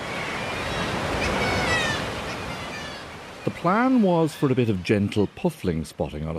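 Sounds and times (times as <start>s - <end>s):
kittiwakes giving faint high cries: 0.0s - 3.5s
surf breaking against sea cliffs on Skellig Mhíle off Kerry Ireland: 0.0s - 6.3s
speech: 3.6s - 6.3s.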